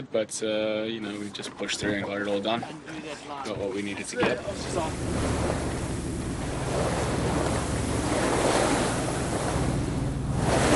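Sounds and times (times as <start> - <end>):
speech: 0.0 - 5.8
roar of open-ocean waves at sea off the end of Madagascar: 4.1 - 10.7
constant wind at sea buffeting the microphone: 4.2 - 10.7.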